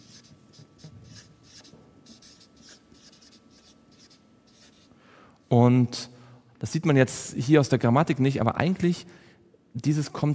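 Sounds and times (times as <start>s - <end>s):
handwriting scratching on a board: 0.0s - 4.9s
speech: 5.5s - 9.2s, 9.8s - 10.3s.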